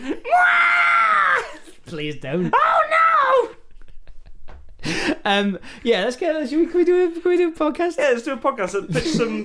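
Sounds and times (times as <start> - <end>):
person screaming: 0.1 - 1.6, 2.5 - 3.6
speech: 1.9 - 2.8, 5.2 - 9.4.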